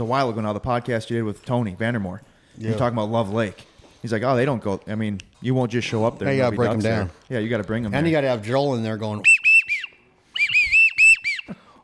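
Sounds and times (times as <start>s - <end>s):
speech: 0.0s - 9.4s
person whistling imitating a pintail duck call: 9.2s - 11.8s.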